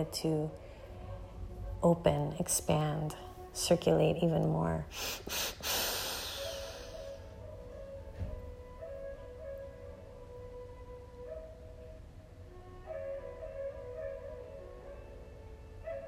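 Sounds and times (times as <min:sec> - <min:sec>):
speech: 0:00.0 - 0:00.6, 0:01.8 - 0:05.8
soft steady droning musical tone: 0:00.0 - 0:04.9, 0:06.3 - 0:16.0
sharp deep inhale during a guided breathing exercise: 0:04.9 - 0:07.3.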